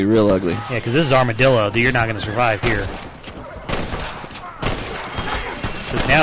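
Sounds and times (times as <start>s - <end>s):
speech: 0.0s - 3.1s, 5.9s - 6.2s
gunfire in a western video game town: 1.7s - 6.2s.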